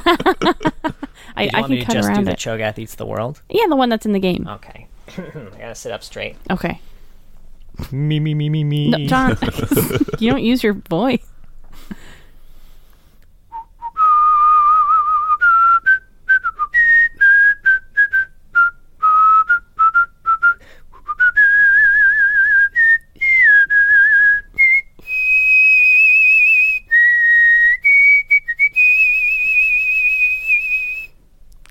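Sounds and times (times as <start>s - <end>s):
speech: 0.0s - 0.7s, 1.4s - 6.9s, 7.8s - 11.9s
laughter: 0.0s - 1.2s, 7.9s - 10.4s
person whistling a bouncy pop tune: 13.5s - 31.2s.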